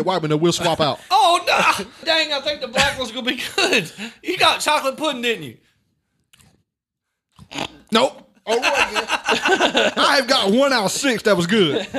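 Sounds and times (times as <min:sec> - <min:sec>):
speech: 0:00.0 - 0:05.7, 0:07.5 - 0:11.9
wet crunchy chewing of candy: 0:06.2 - 0:06.7, 0:07.3 - 0:07.9
laughter: 0:08.5 - 0:11.9.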